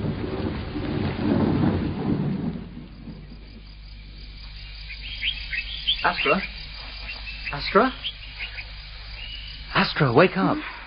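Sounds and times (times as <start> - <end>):
rolling rumble of thunder: 0.0 - 9.8
steady rainfall: 0.0 - 10.8
faint insect chirps: 2.2 - 10.8
speech: 6.0 - 6.6, 7.5 - 8.2, 9.8 - 10.7.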